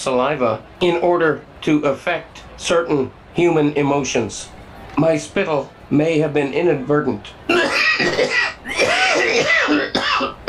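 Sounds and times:
speech: 0.0 - 8.6
person coughing harshly: 7.5 - 10.4.

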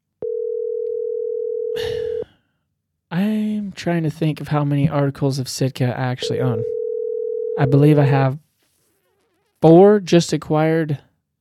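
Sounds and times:
outgoing phone call ringing tone: 0.2 - 2.2, 6.2 - 8.2
speech: 3.8 - 6.8, 7.6 - 8.4, 9.6 - 11.1
rustling noise: 8.4 - 9.4.

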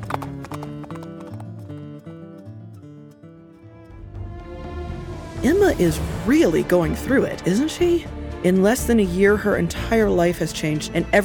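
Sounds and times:
horse hooves galloping away: 0.0 - 2.3
musical score: 3.7 - 10.2
speech: 5.4 - 11.2.

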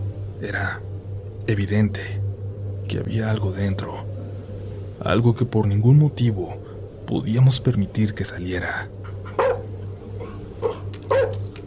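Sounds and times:
steady low hum: 0.0 - 11.6
speech: 0.4 - 0.9, 1.5 - 2.2, 2.9 - 4.1, 5.0 - 9.0
dog barking aggressively: 9.2 - 11.5.

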